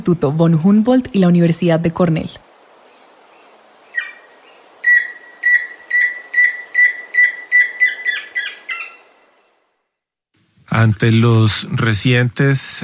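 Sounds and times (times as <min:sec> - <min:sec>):
speech: 0:00.0 - 0:02.4, 0:10.8 - 0:12.8
Tororoi chusquero antpitta trill: 0:03.9 - 0:09.6.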